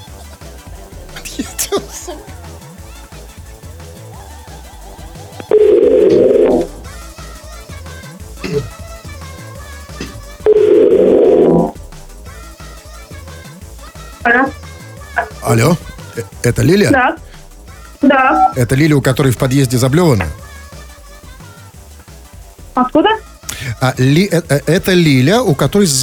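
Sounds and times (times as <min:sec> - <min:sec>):
music: 0:00.0 - 0:26.0
laughter: 0:01.1 - 0:02.7
speech: 0:01.4 - 0:02.5, 0:16.4 - 0:17.3, 0:18.2 - 0:20.4, 0:23.8 - 0:26.0
telephone line tones while a number is called: 0:05.5 - 0:06.6, 0:10.5 - 0:11.7.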